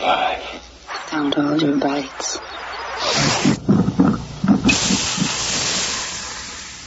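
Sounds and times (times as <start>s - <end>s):
speech: 0.0s - 3.6s
coffee machine hissing steam while brewing: 2.6s - 6.8s.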